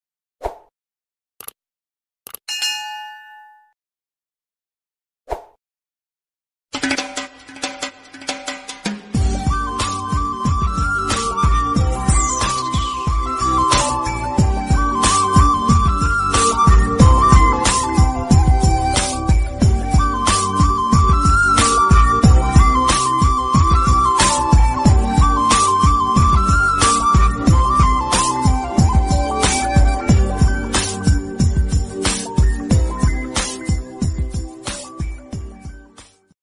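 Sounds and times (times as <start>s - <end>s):
south Indian love background music ringtone: 9.3s - 35.8s.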